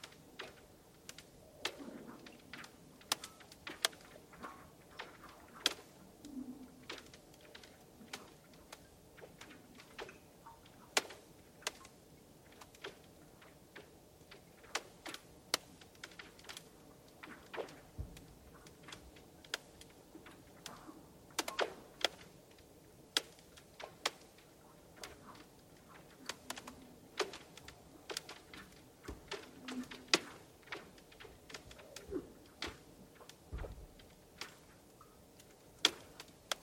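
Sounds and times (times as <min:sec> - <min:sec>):
ice settling and cracking disturbed by water movement: 0:00.0 - 0:36.6
deep thumps: 0:33.5 - 0:34.0.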